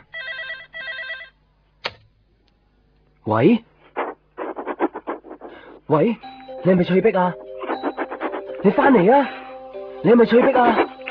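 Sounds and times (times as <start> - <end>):
telephone ringing with electronic warbling rings: 0.0 - 1.4, 6.2 - 11.0
speech: 3.2 - 3.7, 5.9 - 7.4, 8.6 - 9.4, 10.0 - 10.9.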